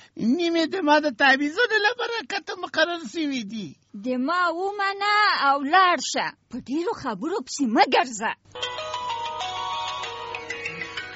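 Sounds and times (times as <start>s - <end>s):
speech: 0.2s - 8.9s
mobile phone ringtone looping electronic melody: 8.6s - 11.1s.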